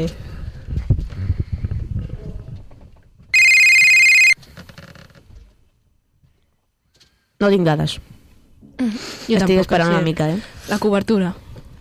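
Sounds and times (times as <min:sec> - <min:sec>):
speech: 0:00.0 - 0:00.2, 0:07.4 - 0:08.1, 0:08.8 - 0:11.4
electronic telephone ring during an outgoing call: 0:03.4 - 0:04.4.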